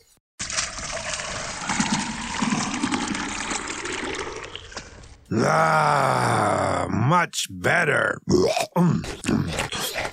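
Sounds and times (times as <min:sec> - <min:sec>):
water pouring: 0:00.4 - 0:05.3
speech: 0:05.3 - 0:10.1.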